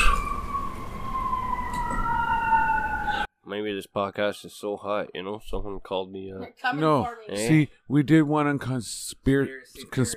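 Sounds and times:
emergency vehicle siren passing outside: 0:00.0 - 0:03.3
speech: 0:03.5 - 0:10.1.

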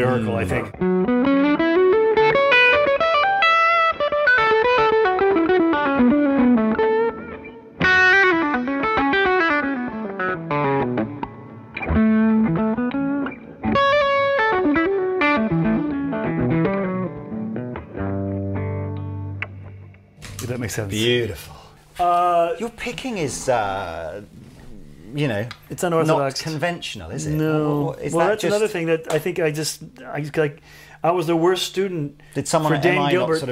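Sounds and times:
speech: 0:00.0 - 0:01.3, 0:20.7 - 0:24.4, 0:25.1 - 0:33.5
distorted electric guitar playing legato lines with quick runs: 0:00.6 - 0:20.4.

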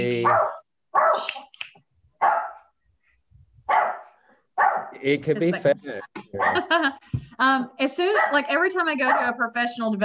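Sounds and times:
speech: 0:00.0 - 0:01.5, 0:05.0 - 0:10.0
puppy barking: 0:00.2 - 0:01.3, 0:02.2 - 0:02.7, 0:03.7 - 0:05.0, 0:06.4 - 0:06.7, 0:08.2 - 0:08.4, 0:09.0 - 0:09.4
laughter: 0:05.0 - 0:07.1.

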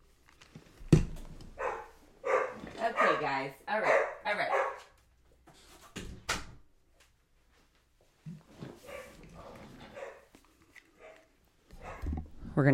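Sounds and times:
dog barking in short bursts: 0:01.6 - 0:05.0, 0:08.8 - 0:10.3, 0:11.0 - 0:12.2
speech: 0:03.2 - 0:03.9, 0:12.6 - 0:12.7.

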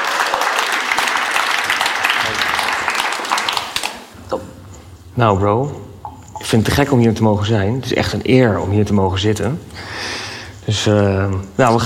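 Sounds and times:
crowd clapping: 0:00.0 - 0:04.1
speech: 0:05.2 - 0:05.8, 0:06.4 - 0:10.0, 0:10.7 - 0:11.8.

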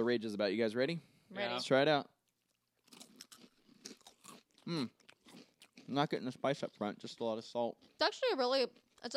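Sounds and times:
speech: 0:00.0 - 0:02.1, 0:04.7 - 0:05.0, 0:05.9 - 0:09.1
person crunching tortilla chips: 0:02.3 - 0:05.9.

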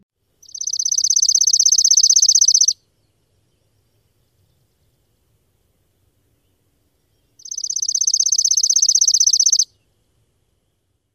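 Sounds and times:
Chipping Sparrow singing dry mechanical trills: 0:00.4 - 0:04.0, 0:07.1 - 0:09.9.

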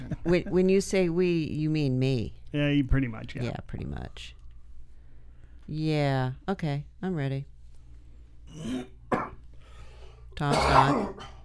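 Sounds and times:
speech: 0:00.2 - 0:04.4, 0:05.7 - 0:07.5, 0:08.5 - 0:09.0, 0:10.4 - 0:11.4
person coughing: 0:08.5 - 0:09.4, 0:10.4 - 0:11.4.

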